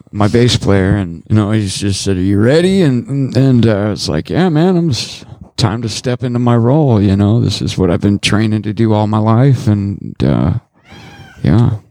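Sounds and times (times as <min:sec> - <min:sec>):
speech: 0:00.1 - 0:10.6, 0:11.4 - 0:11.8
cat meowing: 0:10.8 - 0:11.7.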